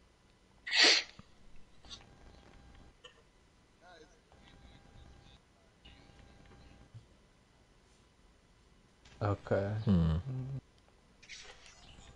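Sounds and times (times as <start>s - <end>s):
person sneezing: 0.7s - 1.2s
speech: 9.2s - 10.6s.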